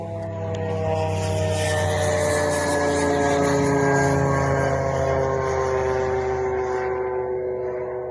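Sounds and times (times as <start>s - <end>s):
approaching drone propeller buzz with engine hum: 0.0s - 8.1s.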